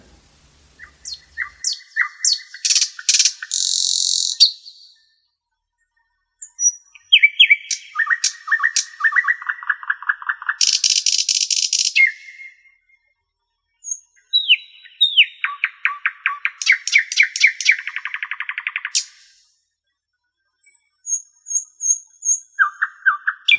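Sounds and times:
bird singing chirps, buzzy trills and rattling phrases: 0:00.0 - 0:05.2, 0:06.4 - 0:12.9, 0:13.8 - 0:19.4, 0:20.6 - 0:23.5.

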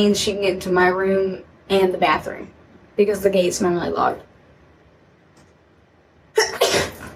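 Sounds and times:
speech: 0:00.0 - 0:04.3
person sneezing: 0:06.4 - 0:07.1.

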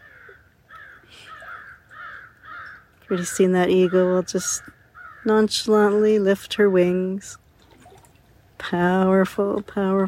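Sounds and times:
crow cawing: 0:00.0 - 0:02.9, 0:03.8 - 0:05.3
speech: 0:03.1 - 0:07.4, 0:08.7 - 0:10.0.

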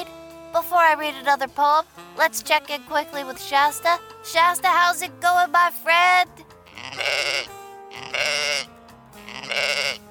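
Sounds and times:
speech: 0:00.6 - 0:07.6
sheep bleating: 0:06.6 - 0:10.0.

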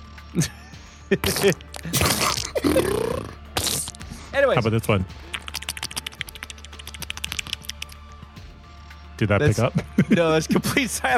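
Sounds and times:
speech: 0:00.3 - 0:03.1, 0:04.4 - 0:05.3, 0:09.2 - 0:11.1
person imitating farts with their mouth: 0:01.2 - 0:04.0, 0:05.3 - 0:07.6.

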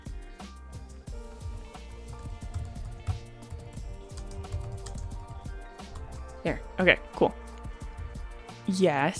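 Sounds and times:
typing on a computer keyboard: 0:02.2 - 0:06.2
speech: 0:06.4 - 0:07.4, 0:08.7 - 0:09.1.

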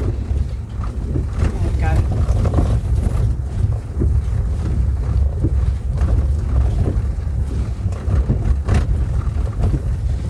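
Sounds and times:
off-road vehicle with air suspension rumbling across rough bumpy tracks: 0:00.0 - 0:10.2
vehicle windscreen wipers running: 0:00.0 - 0:10.2.

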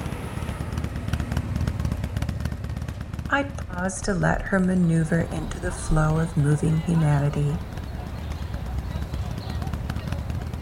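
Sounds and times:
motorbike engine puttering through a market: 0:00.0 - 0:10.6
speech: 0:03.3 - 0:07.7
clatter and bustle of a busy outdoor crowd: 0:04.2 - 0:10.6.

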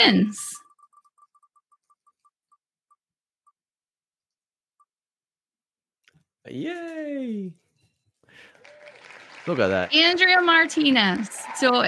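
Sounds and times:
speech: 0:00.0 - 0:00.6, 0:06.5 - 0:07.6, 0:09.5 - 0:11.8
prize wheel spinning and clicking: 0:00.0 - 0:03.0.

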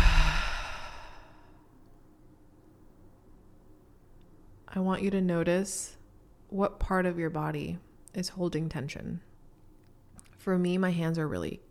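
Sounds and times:
long breath out through the mouth in guided meditation: 0:00.0 - 0:01.3
speech: 0:04.7 - 0:09.3, 0:10.4 - 0:11.6.

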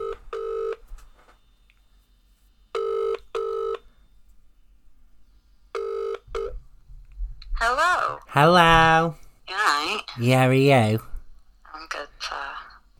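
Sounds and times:
outgoing phone call ringing tone: 0:00.0 - 0:00.8, 0:02.7 - 0:03.8, 0:05.8 - 0:06.6
speech: 0:07.8 - 0:11.1.

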